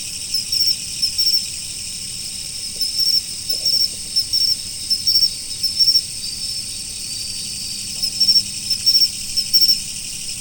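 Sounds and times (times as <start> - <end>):
insects in a continuous high-pitched chorus in autumn: 0.0 - 10.3
short louder pulsed insect chirps: 0.1 - 1.5, 2.8 - 10.3.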